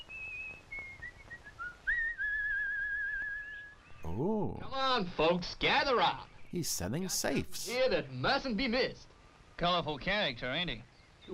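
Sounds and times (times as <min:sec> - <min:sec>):
person whistling a wavering melody: 0:00.7 - 0:03.8
speech: 0:04.1 - 0:11.3.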